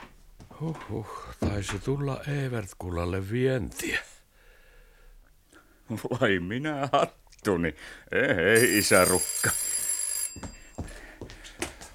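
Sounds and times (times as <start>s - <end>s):
speech: 0.6s - 4.1s, 5.9s - 9.7s
telephone bell ringing: 8.6s - 11.3s.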